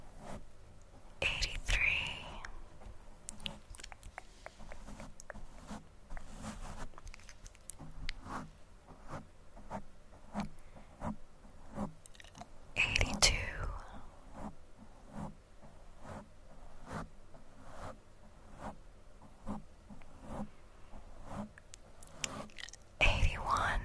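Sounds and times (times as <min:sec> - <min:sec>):
faint low hum: 0:00.0 - 0:23.8
louder scratchy swishes: 0:03.4 - 0:07.4, 0:08.2 - 0:12.0, 0:14.3 - 0:18.8, 0:19.4 - 0:22.6
crisp microphone brushing with soft clicks and crackles: 0:03.4 - 0:12.0, 0:14.3 - 0:22.5.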